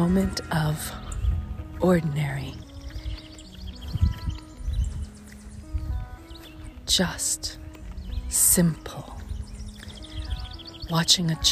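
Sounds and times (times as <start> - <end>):
speech: 0.0 - 1.0, 1.8 - 2.7, 6.9 - 7.6, 8.3 - 9.1, 10.9 - 11.5
sparrow chirping: 0.0 - 11.5.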